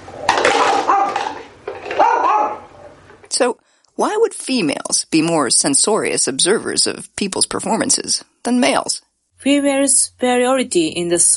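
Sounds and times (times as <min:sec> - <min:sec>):
small dog barking: 0:00.8 - 0:01.4, 0:02.0 - 0:02.7
speech: 0:03.4 - 0:11.3.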